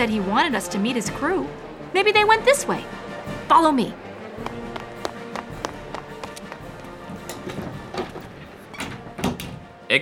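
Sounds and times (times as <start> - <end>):
speech: 0.0 - 4.5
sharp taps and clatters backstage: 4.4 - 8.3
circus stage door opening: 6.3 - 9.7.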